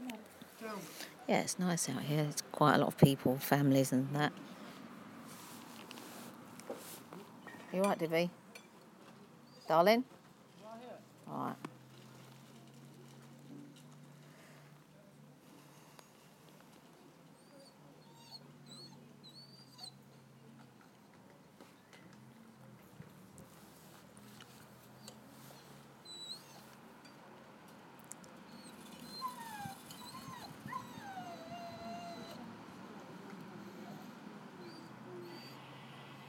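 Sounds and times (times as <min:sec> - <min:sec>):
speech: 0:00.6 - 0:04.6, 0:07.7 - 0:08.4, 0:09.7 - 0:10.2, 0:11.3 - 0:11.7
dog whimpering with high-pitched whines and short cries: 0:17.4 - 0:20.0, 0:26.0 - 0:26.7, 0:28.5 - 0:32.5, 0:33.5 - 0:35.7.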